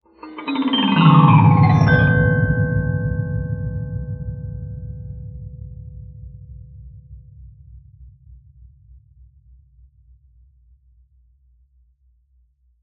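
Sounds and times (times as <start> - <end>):
glissando special effect: 0.1 - 5.1.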